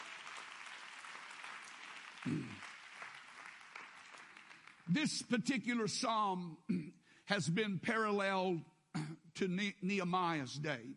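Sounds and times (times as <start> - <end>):
crowd clapping: 0.0 - 5.5
speech: 2.2 - 2.7, 4.9 - 10.9.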